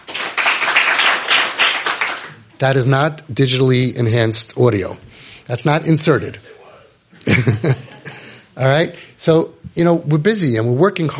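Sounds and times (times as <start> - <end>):
room full of people applauding: 0.0 - 2.4
speech: 2.6 - 6.6, 7.2 - 7.8, 8.6 - 11.1
laughter: 7.2 - 8.5.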